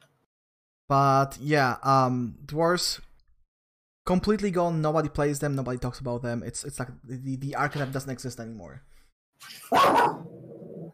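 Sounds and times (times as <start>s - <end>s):
speech: 0.9s - 3.1s, 4.0s - 10.4s
single sharp dog bark: 9.7s - 10.3s.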